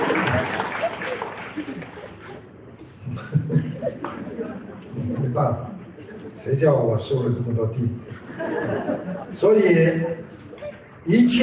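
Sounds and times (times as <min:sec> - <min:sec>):
audience clapping: 0:00.0 - 0:02.4
laughter: 0:00.0 - 0:06.4, 0:08.1 - 0:09.9
speech: 0:05.4 - 0:05.7, 0:06.4 - 0:10.3, 0:11.0 - 0:11.4.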